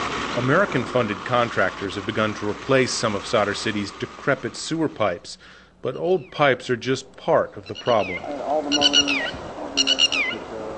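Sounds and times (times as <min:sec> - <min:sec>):
speech: 0:00.4 - 0:10.0
birds chirping at an idle sewage treatment plant in Baghdad: 0:05.2 - 0:10.7.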